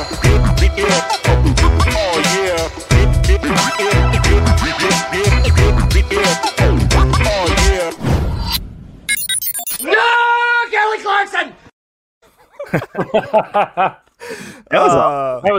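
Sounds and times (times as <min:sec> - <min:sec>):
pop song: 0:00.0 - 0:08.3
person screaming along to a pop song: 0:09.8 - 0:10.7
laughter: 0:12.3 - 0:14.1
speech: 0:13.1 - 0:15.5.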